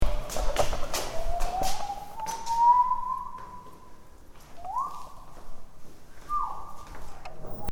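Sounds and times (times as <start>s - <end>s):
person whistling in a concrete stairway: 1.0s - 5.3s, 6.2s - 6.9s.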